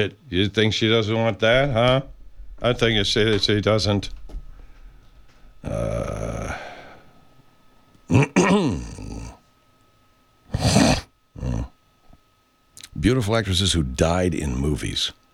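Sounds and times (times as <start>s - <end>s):
speech: 0.0s - 4.3s, 5.6s - 6.6s, 8.1s - 9.2s, 13.0s - 15.2s
belching: 4.6s - 7.2s, 8.0s - 9.5s, 10.5s - 11.8s.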